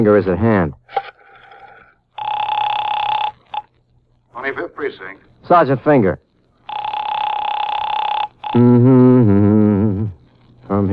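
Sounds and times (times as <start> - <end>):
speech: 0.0 - 1.2, 4.5 - 6.2, 8.6 - 10.9
telephone ringing: 2.1 - 3.7, 6.6 - 8.7.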